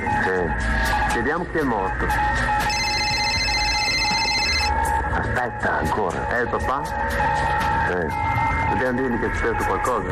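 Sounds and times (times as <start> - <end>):
speech: 0.4 - 2.6, 5.2 - 10.1
mobile phone ringing: 2.7 - 4.8.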